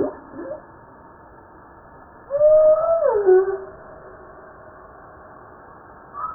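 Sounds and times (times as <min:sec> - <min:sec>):
humpback whale song unit with wavering tonal cry: 0:00.0 - 0:01.0, 0:02.2 - 0:04.8.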